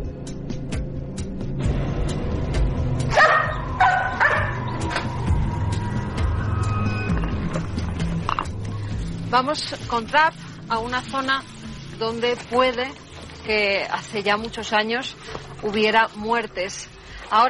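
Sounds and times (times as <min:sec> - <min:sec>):
steady low rumble: 0:00.1 - 0:14.6
large dogs used to finding things barking and yipping: 0:03.0 - 0:06.5
speech: 0:09.4 - 0:17.4.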